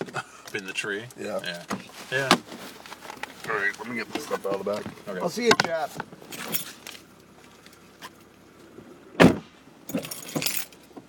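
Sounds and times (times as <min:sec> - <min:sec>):
speech: 0:00.5 - 0:02.5, 0:03.5 - 0:06.7
faint shuffling: 0:01.3 - 0:08.8
set of keys jangling: 0:06.3 - 0:06.8, 0:09.9 - 0:10.9.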